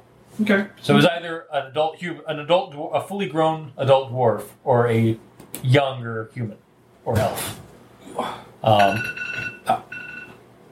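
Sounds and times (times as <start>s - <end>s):
speech: 0.4s - 7.6s, 8.2s - 9.8s
timer alarm ringing with a steady electronic tone: 8.7s - 10.4s.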